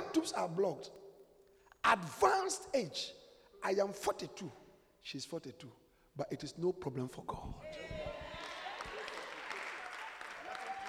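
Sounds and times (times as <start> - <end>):
speech: 0.2 - 1.0, 1.8 - 8.0
audience applause: 8.2 - 10.8.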